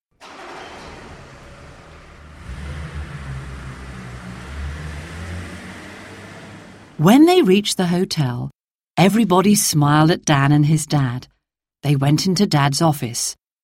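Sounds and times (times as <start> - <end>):
car engine starting with a hiss and rumbling: 0.2 - 7.2
speech: 7.0 - 13.4.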